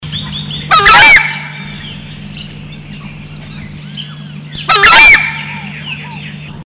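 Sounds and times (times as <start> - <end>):
Chauna torquata: 0.7 - 3.8, 4.6 - 6.0.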